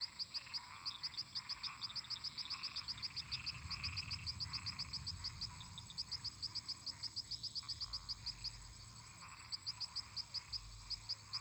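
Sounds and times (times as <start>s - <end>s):
toads and frogs croaking in a marsh: 0.0s - 11.4s
constant high hiss: 2.3s - 11.4s.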